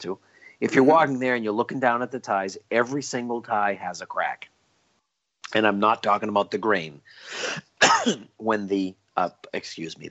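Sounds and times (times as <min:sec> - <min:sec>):
speech: 0:00.0 - 0:04.5, 0:05.5 - 0:10.0
person coughing and clearing their throat: 0:07.3 - 0:08.4.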